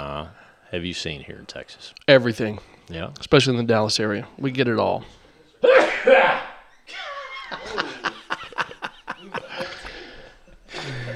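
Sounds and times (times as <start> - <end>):
speech: 0.2 - 7.9
loud sneeze into a microphone: 5.6 - 6.6
people chuckling: 6.0 - 11.1.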